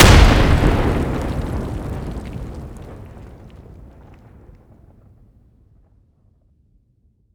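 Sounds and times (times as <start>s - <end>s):
distant grenade explosion: 0.0s - 5.1s.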